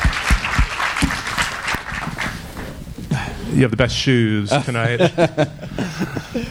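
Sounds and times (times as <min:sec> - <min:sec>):
crowd applauding: 0:00.0 - 0:02.6
speech: 0:03.5 - 0:06.4
laughter: 0:04.6 - 0:06.4.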